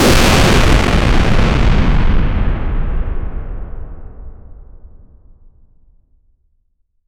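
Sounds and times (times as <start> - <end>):
big bang explosion: 0.0 - 5.5.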